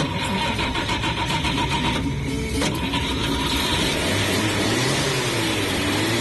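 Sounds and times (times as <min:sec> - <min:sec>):
car engine accelerating on a road trip: 0:00.0 - 0:06.1.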